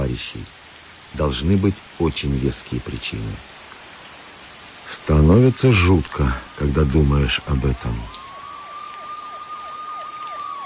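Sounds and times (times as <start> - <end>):
speech: 0.1 - 3.7, 4.9 - 8.2
police car sirens wailing from militia cars: 7.6 - 10.6.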